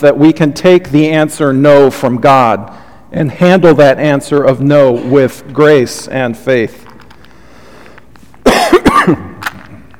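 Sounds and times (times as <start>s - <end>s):
speech: 0.0s - 6.8s, 8.9s - 9.3s
person coughing during a Bible teaching: 4.8s - 5.4s, 8.4s - 9.4s.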